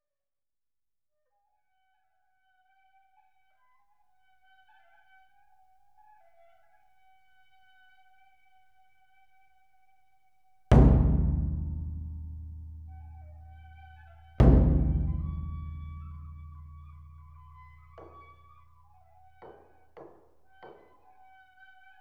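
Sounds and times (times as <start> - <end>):
O-Daiko big drum hits: 10.7 - 18.3.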